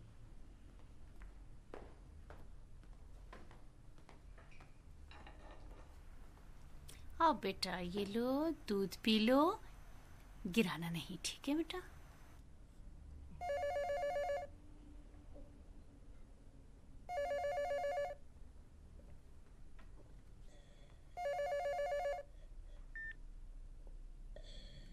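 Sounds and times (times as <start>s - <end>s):
faint low hum: 0.0s - 24.9s
speech: 7.2s - 9.6s, 10.4s - 11.9s
telephone ringing with bright electronic trill: 13.4s - 14.5s, 17.1s - 18.2s, 21.2s - 22.3s.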